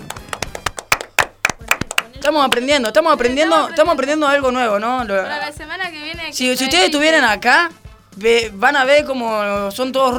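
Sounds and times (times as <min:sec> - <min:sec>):
a few hands clapping during a radio show: 0:00.0 - 0:03.2
speech: 0:02.3 - 0:10.1.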